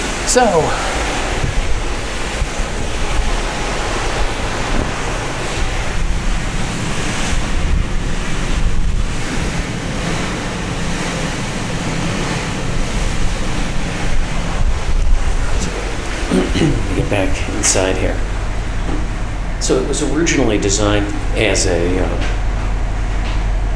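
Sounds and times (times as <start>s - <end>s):
strong wind buffeting microphone on ferry deck: 0.0s - 23.7s
wash of open water below ferry deck: 0.0s - 23.7s
speech: 0.3s - 1.0s, 16.6s - 18.3s, 19.6s - 22.4s.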